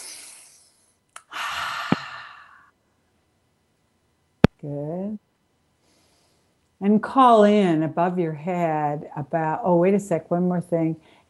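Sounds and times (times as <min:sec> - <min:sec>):
person inhaling softly during a guided relaxation exercise: 0:00.0 - 0:02.7, 0:05.8 - 0:06.5
speech: 0:04.6 - 0:05.2, 0:06.8 - 0:11.2.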